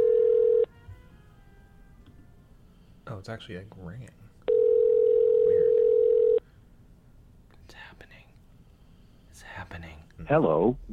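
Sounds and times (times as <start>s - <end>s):
loud telephone dial tone while placing a call: 0.0s - 0.7s, 4.5s - 6.4s
faint hiss: 0.0s - 10.9s
speech: 3.2s - 4.3s, 9.6s - 10.9s.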